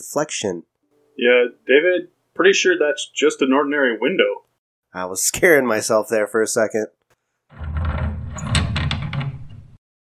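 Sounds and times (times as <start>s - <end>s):
speech: 0.0s - 7.8s
heavy cellar door grinding and scraping: 7.5s - 9.8s.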